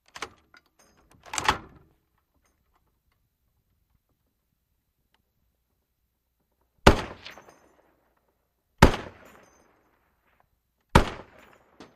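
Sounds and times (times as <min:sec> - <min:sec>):
.50 caliber single gunshots: 0:06.8 - 0:07.5, 0:08.8 - 0:09.4, 0:10.9 - 0:11.8
.50 caliber shell casings dropping: 0:07.2 - 0:08.3, 0:09.0 - 0:10.3, 0:11.2 - 0:11.9.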